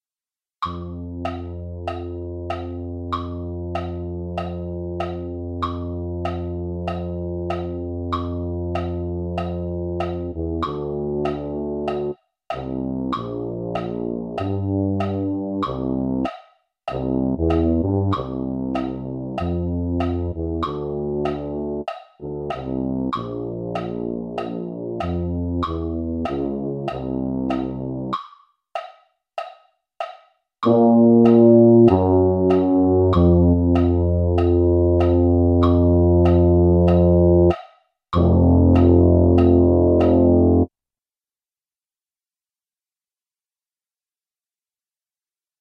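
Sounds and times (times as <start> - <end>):
MIDI tuba: 0.6 - 16.3, 16.9 - 28.2, 30.6 - 37.6, 38.2 - 40.7.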